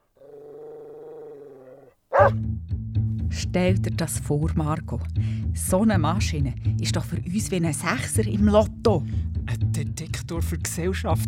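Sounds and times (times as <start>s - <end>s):
agitated dog growling: 0.0s - 2.4s
agitated dog barking: 1.7s - 2.4s
speech: 2.2s - 2.5s, 3.3s - 11.2s.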